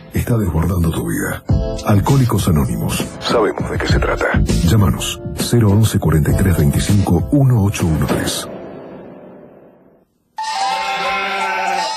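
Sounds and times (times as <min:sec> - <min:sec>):
speech: 0:00.1 - 0:08.6
sheep bleating: 0:10.4 - 0:11.9.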